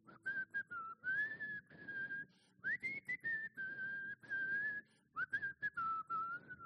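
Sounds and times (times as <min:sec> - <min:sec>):
person whistling a wavering tuneful line: 0:00.0 - 0:06.6
person breathing: 0:01.4 - 0:02.8, 0:03.5 - 0:05.2.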